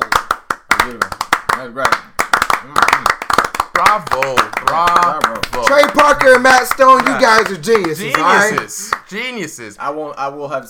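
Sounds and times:
slow hand claps: 0.0 - 9.1
speech: 0.9 - 2.0, 4.0 - 10.6.

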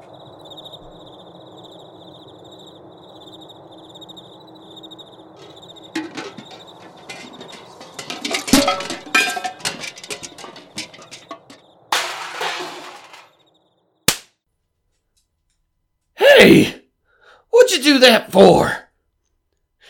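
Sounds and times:
cricket-like insects chirping at night over a barren wasteland: 0.0 - 14.1
metal pots and pans clattering and jingling: 5.4 - 13.4
sharp smack: 14.1 - 14.3
speech: 18.0 - 18.8.

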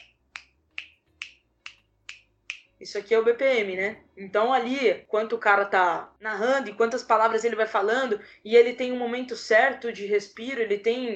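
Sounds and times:
crisp finger snaps in a steady rhythm: 0.0 - 2.8
speech: 2.8 - 11.1.

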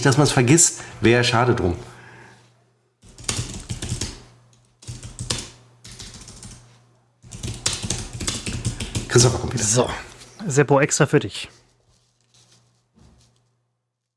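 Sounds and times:
speech: 0.0 - 1.9, 9.2 - 11.6
typing an invoice on a computer keyboard: 3.0 - 6.6, 7.2 - 9.3.

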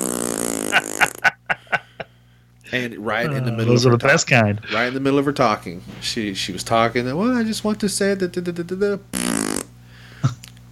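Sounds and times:
voice imitating a loud ripping fart: 0.0 - 1.3, 9.1 - 10.4
laughter: 0.6 - 2.1
speech: 2.7 - 9.4.

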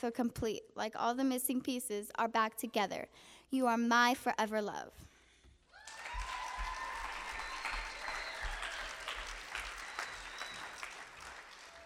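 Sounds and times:
speech: 0.0 - 5.1
faint whoops or calls from audience: 5.7 - 11.8
audience applauding after a poem: 5.8 - 11.8.

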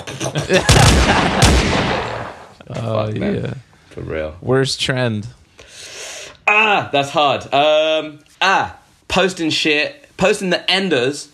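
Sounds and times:
laughter: 0.0 - 2.2
speech: 0.2 - 2.0, 2.7 - 5.4, 6.6 - 11.3
gunshot sound effects with long rumbling echo: 0.6 - 2.6.

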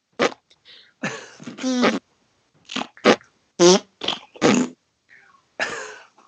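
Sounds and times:
fart noises blown by mouth: 0.2 - 0.4, 1.4 - 2.0, 2.7 - 4.8.

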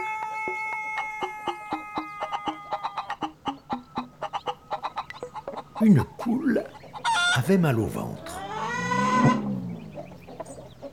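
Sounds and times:
hen clucking: 0.0 - 10.9
hen squawking: 2.2 - 10.9
speech: 5.8 - 6.8, 7.4 - 8.4.

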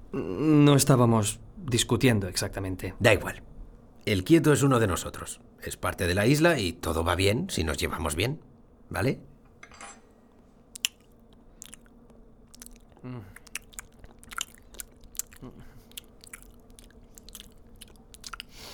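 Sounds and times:
low room hum: 0.0 - 18.7
speech: 0.1 - 9.3
faint clink of dishes: 9.6 - 10.1
wet chewing with crunchy bites and smacks: 10.7 - 18.7.

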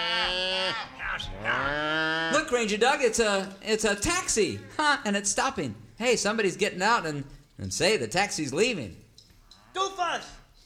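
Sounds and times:
herd of cattle mooing on a dirt road: 0.0 - 2.4, 9.5 - 10.0
speech: 2.5 - 9.0, 9.8 - 10.4.

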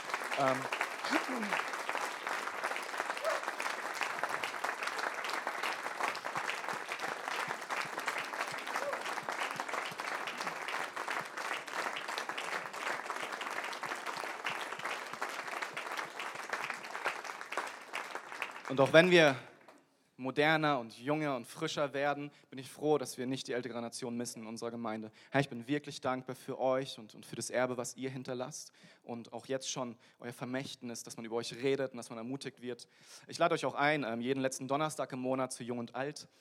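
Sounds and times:
audience applauding: 0.0 - 19.4
speech: 0.4 - 1.8, 18.7 - 19.5, 20.2 - 36.3.

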